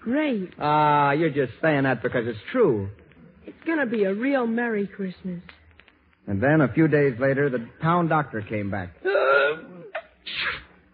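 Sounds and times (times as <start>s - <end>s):
speech: 0.0s - 3.0s, 3.6s - 5.6s, 6.3s - 9.7s
person sneezing: 9.1s - 10.8s.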